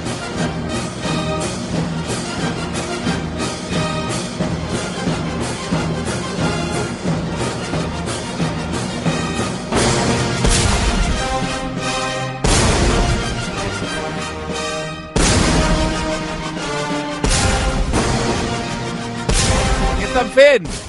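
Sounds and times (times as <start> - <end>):
full orchestra playing an overture loudly: 0.0 - 20.8
real cannon blasts: 12.4 - 13.7, 15.2 - 20.8.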